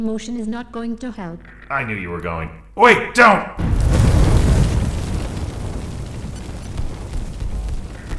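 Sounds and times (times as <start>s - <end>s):
speech: 0.0s - 3.9s
crackling debris-filled roar: 3.6s - 8.1s
explosion: 3.6s - 8.1s.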